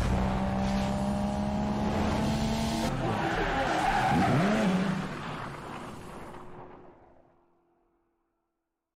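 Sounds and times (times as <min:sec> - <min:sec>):
BMW M5 V10 and Mercedes E63 engine roar: 0:00.0 - 0:06.9
BMW M5 V10 and Mercedes E63 tire squeal and skidding: 0:02.9 - 0:06.5.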